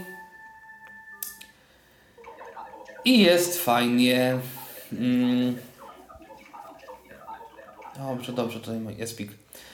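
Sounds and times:
Samsung phone ringtone ringing: 0.0 - 1.3, 2.1 - 3.7, 4.3 - 8.8
speech: 3.0 - 5.7, 8.0 - 9.7.

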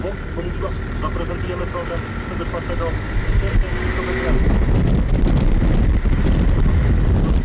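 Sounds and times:
speech: 0.4 - 3.6
wind buffeting a microphone held out of a window: 2.9 - 7.4.

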